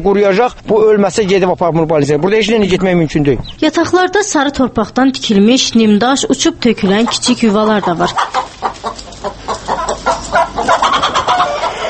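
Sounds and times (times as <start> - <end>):
speech: 0.0 - 8.5
flock of chickens including speckled Astrakhan breed clucking: 6.7 - 11.8.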